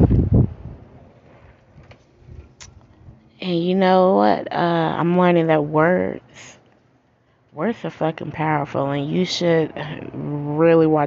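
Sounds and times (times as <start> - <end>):
wind buffeting an outdoor microphone: 0.0 - 3.2
speech: 3.5 - 6.6, 7.6 - 11.0.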